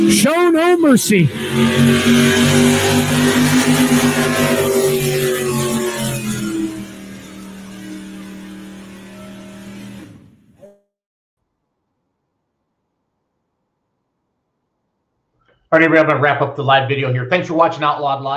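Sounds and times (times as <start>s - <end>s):
speech: 0.0s - 4.6s, 15.7s - 18.3s
big block Ford truck engine roaring under heavy load: 0.0s - 10.6s.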